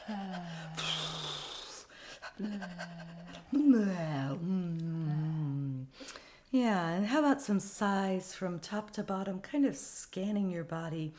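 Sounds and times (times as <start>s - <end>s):
person imitating a panting dog: 0.0s - 4.1s
sustained wavering vocal tones: 0.0s - 5.9s
speech: 0.1s - 0.8s, 2.4s - 4.5s, 6.5s - 11.1s.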